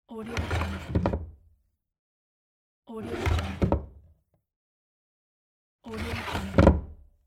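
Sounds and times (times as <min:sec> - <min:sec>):
old wooden cabinet medium drawer closing: 0:00.4 - 0:01.3, 0:03.1 - 0:03.9, 0:05.9 - 0:07.0.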